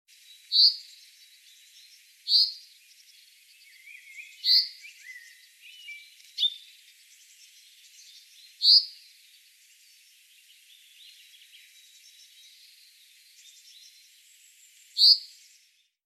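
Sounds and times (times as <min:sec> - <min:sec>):
faint bird twittering: 0:00.2 - 0:15.7
common chaffinch Fringilla coelebs short sharp high calls: 0:00.4 - 0:02.7, 0:03.8 - 0:06.8, 0:07.4 - 0:09.0, 0:15.0 - 0:15.3.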